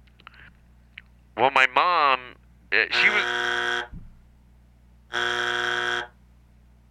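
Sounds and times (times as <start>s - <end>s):
speech: 1.4s - 1.9s, 2.7s - 3.4s
flat electronic buzzer: 3.0s - 3.9s, 5.1s - 6.2s.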